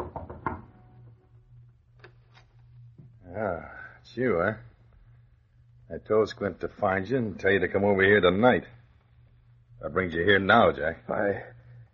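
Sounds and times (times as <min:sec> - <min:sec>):
sharp knocks on the wooden door of a small apartment: 0:00.0 - 0:00.7
low steady hum: 0:00.0 - 0:11.9
speech: 0:03.4 - 0:04.7, 0:05.9 - 0:08.8, 0:09.8 - 0:11.5.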